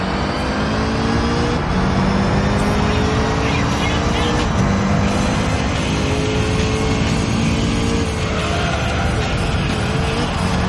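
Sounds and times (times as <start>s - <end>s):
racing video game car engine drone revving: 0.0s - 10.6s.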